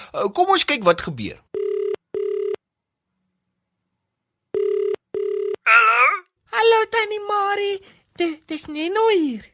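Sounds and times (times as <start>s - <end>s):
speech: 0.1s - 1.6s, 6.7s - 9.5s
cellphone ringback tone after dialing: 1.6s - 2.6s, 4.6s - 5.6s.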